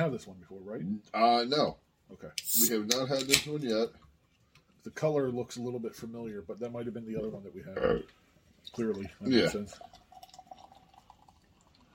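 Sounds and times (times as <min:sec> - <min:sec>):
speech: 0:00.0 - 0:04.0, 0:04.8 - 0:10.0
liquid pouring into a container: 0:08.5 - 0:11.9.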